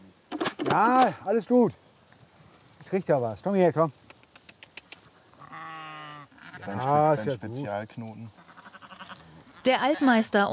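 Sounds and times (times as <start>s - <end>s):
speech: 0.7s - 1.8s, 2.9s - 4.0s, 6.6s - 8.4s, 9.6s - 10.5s
Shropshire sheep bleating: 5.3s - 7.6s, 8.3s - 10.2s.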